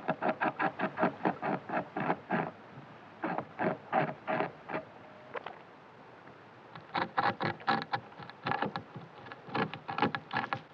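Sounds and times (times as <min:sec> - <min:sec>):
European beaver Castor fiber rasping at night: 0:00.0 - 0:02.5, 0:03.2 - 0:04.8, 0:06.8 - 0:10.7.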